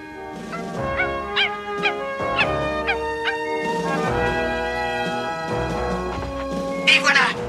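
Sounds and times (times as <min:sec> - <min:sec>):
steady sustained musical background: 0:00.0 - 0:07.4
dog barking and whimpering: 0:00.5 - 0:04.1.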